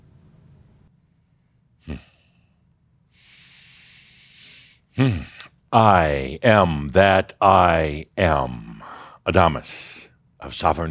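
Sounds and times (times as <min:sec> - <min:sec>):
person taking a deep breath during a guided meditation: 0:03.1 - 0:05.4, 0:08.7 - 0:09.2
speech: 0:05.0 - 0:08.7, 0:09.3 - 0:10.9.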